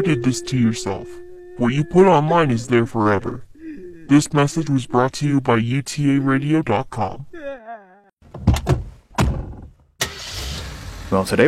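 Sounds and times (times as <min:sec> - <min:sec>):
speech: 0:00.0 - 0:03.5, 0:04.1 - 0:07.8, 0:11.1 - 0:11.4
car engine cranking, starting and running: 0:09.4 - 0:11.4.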